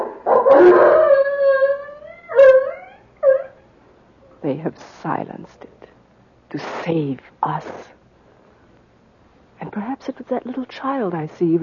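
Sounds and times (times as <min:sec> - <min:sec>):
dog barking sharply: 0:00.0 - 0:00.9
dog howling: 0:00.0 - 0:03.6
speech: 0:04.4 - 0:05.9, 0:06.5 - 0:08.0, 0:09.6 - 0:11.6.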